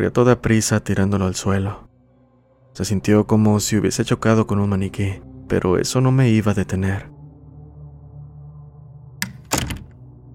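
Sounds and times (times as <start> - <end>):
speech: 0.0 - 1.9, 2.8 - 7.2
door thudding shut: 9.2 - 10.0.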